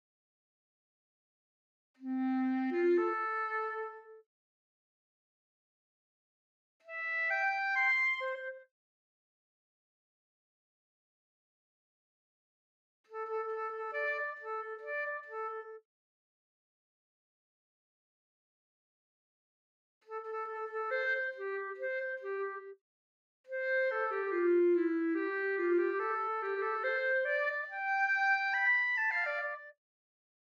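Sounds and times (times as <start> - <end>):
clarinet: 2.0 - 4.2, 6.8 - 8.7, 13.1 - 15.8, 20.0 - 22.8, 23.5 - 29.8.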